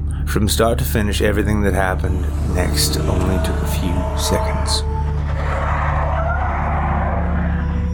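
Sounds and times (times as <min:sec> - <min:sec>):
speech: 0:00.3 - 0:04.9
faint tire squeal: 0:01.8 - 0:07.9.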